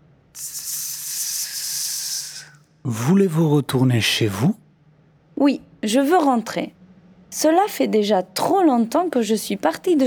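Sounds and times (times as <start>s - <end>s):
snake hissing: 0.4s - 2.6s
speech: 2.8s - 4.6s, 5.4s - 10.0s.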